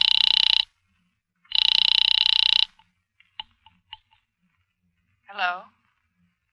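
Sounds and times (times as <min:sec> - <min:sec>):
telephone bell ringing: 0:00.0 - 0:00.7, 0:01.5 - 0:02.8
speech: 0:05.4 - 0:05.8.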